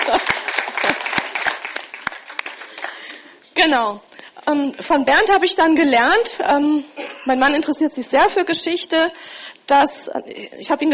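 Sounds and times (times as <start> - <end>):
church audience applauding: 0.0 - 3.3
speech: 3.6 - 10.9.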